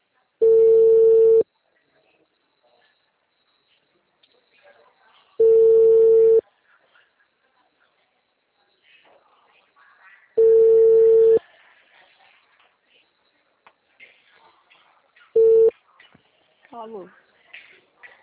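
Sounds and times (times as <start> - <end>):
telephone ringback tone while calling someone: 0.4 - 1.4, 5.4 - 6.4, 10.4 - 11.4, 15.4 - 15.7.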